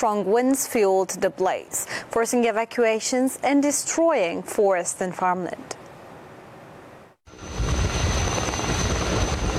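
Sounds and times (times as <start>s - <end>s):
speech: 0.0s - 5.8s
faint high whine of helicopter: 5.9s - 9.5s
firefighting helicopter rotor thudding overhead: 7.3s - 9.5s.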